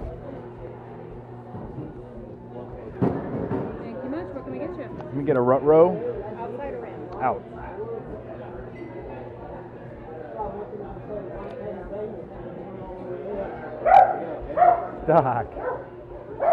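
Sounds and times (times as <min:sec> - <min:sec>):
murmur of voices and chatter: 0:00.0 - 0:16.5
speech: 0:05.2 - 0:06.1, 0:07.2 - 0:07.5, 0:15.1 - 0:15.6
big dog barking: 0:13.8 - 0:16.5.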